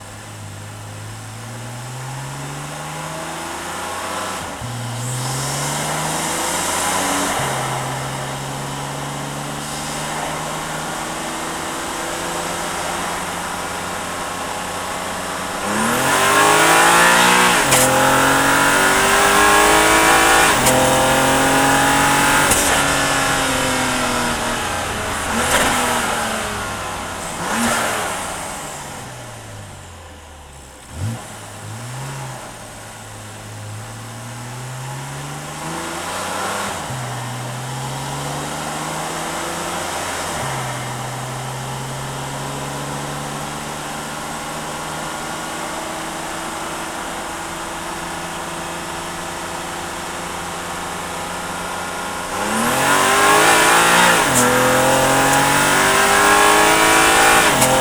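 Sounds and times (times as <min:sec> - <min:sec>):
car engine recorded onboard: 0:00.0 - 0:57.7
car gearshifts while driving: 0:04.5 - 0:30.0, 0:49.8 - 0:57.7.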